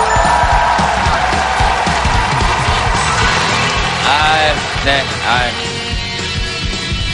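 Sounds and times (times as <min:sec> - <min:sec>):
studio audience cheers and whoops: 0:00.0 - 0:04.7
studio audience applause: 0:00.0 - 0:07.0
speech: 0:04.8 - 0:05.7.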